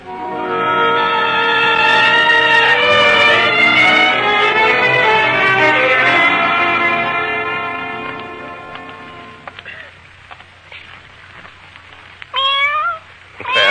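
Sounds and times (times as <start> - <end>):
faint noise: 0.0 - 13.6
cat meowing in a dark doorway on a street: 12.3 - 13.6.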